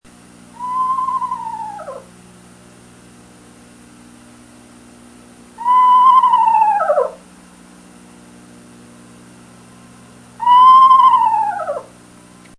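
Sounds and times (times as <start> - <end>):
eastern screech owl calling: 0.5 - 2.1, 5.6 - 7.3, 10.4 - 12.0.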